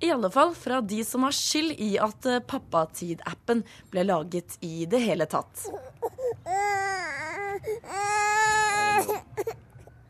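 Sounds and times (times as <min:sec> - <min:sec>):
speech: 0:00.0 - 0:09.6
baby crying in wavering wails: 0:05.6 - 0:09.6.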